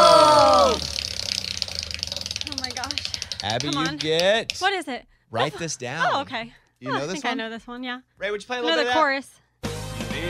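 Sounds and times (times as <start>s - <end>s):
person shouting: 0.0s - 1.0s
prize wheel clicker ticking: 2.4s - 4.7s
speech: 3.4s - 9.4s.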